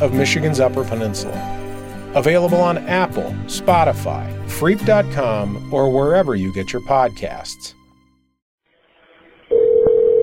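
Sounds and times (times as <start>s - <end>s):
speech: 0.0s - 7.8s
telephone dialing tone of a jail call: 9.5s - 10.2s.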